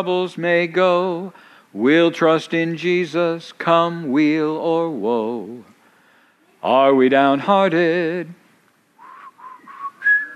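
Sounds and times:
speech: 0.0 - 5.7, 6.6 - 8.4
person whistling a hymn tune: 9.0 - 10.3.

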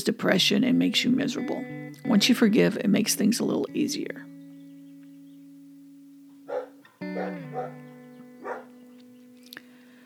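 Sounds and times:
speech: 0.0 - 4.3
dog barking in backyard: 6.5 - 8.8.

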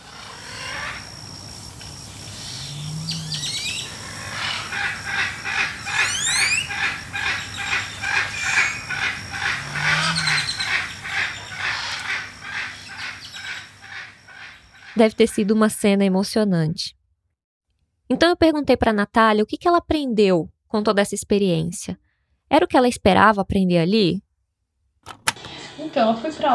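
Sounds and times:
red macaws calling with harsh raucous squawks: 0.0 - 15.0
steady outdoor noise: 0.0 - 15.4, 25.1 - 26.5
speech: 15.0 - 17.0, 18.1 - 24.2, 25.0 - 26.5.

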